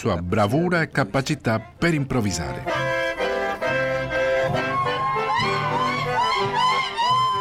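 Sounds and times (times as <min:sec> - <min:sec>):
speech: 0:00.0 - 0:02.9
rhythmic accordion-style chamamé music: 0:00.0 - 0:07.3
sapucai festive shout: 0:03.8 - 0:07.3.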